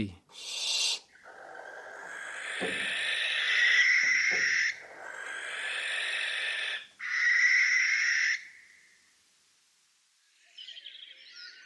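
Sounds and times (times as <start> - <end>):
speech: 0.0 - 0.6, 2.6 - 3.0
barn owl screeching: 0.4 - 8.4.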